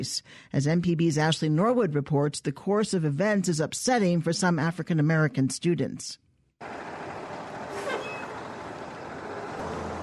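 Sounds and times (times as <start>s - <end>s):
speech: 0.0s - 6.8s
heavy school bus engines rumbling: 6.6s - 10.0s
school bus air brakes hissing: 7.6s - 8.5s.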